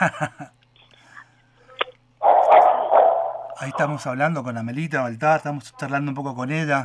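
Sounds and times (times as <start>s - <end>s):
speech: 0.0s - 0.6s, 3.6s - 6.8s
dogs barking: 2.2s - 4.0s.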